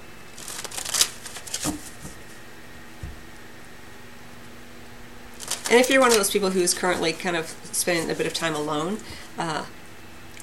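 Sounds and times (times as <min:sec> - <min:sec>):
cards being shuffled during a card reading: 0:00.4 - 0:02.2, 0:05.4 - 0:07.1
speech: 0:05.7 - 0:09.8.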